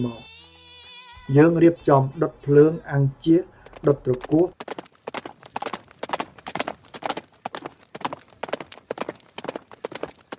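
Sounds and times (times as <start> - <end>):
speech: 0.0 - 0.3, 1.3 - 4.8
horse hooves clip-clopping: 3.4 - 10.3.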